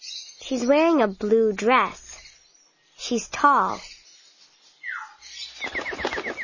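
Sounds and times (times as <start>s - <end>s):
speech: 0.4s - 2.0s, 3.1s - 3.9s
bird call: 4.8s - 6.4s
bird wings flapping: 5.6s - 6.4s.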